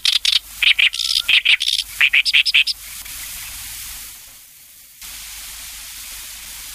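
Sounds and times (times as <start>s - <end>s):
Oriental reed warbler singing rasping croaky notes: 0.1s - 2.7s.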